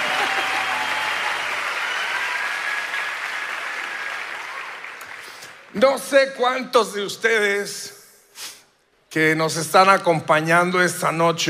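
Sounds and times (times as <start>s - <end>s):
audience applause: 0.0s - 5.8s
speech: 5.7s - 8.0s, 9.2s - 11.4s.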